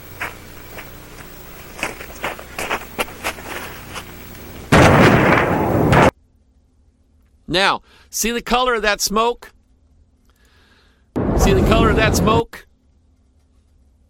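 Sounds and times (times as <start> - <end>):
explosion blast at a fire scene played back from a video: 4.7 - 6.1, 11.2 - 12.4
speech: 7.5 - 9.6, 11.4 - 12.7.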